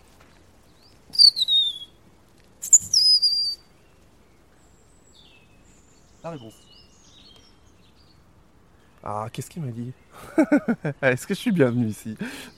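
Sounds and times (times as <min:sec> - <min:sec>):
thin high-pitched European robin song trilling: 0:00.6 - 0:02.0, 0:02.6 - 0:12.5
high sweeping whistled notes: 0:01.1 - 0:02.0, 0:02.6 - 0:03.6
speech: 0:06.2 - 0:06.7, 0:09.0 - 0:12.5
laughter: 0:10.2 - 0:11.3.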